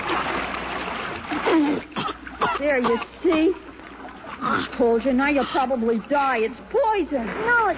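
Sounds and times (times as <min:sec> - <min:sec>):
water splashing as a person scoops water from a salty stream: 0:00.0 - 0:07.7
speech: 0:01.3 - 0:02.0, 0:02.6 - 0:03.7, 0:04.4 - 0:07.7
brief gulping or gurgling: 0:01.4 - 0:03.6, 0:04.2 - 0:06.0.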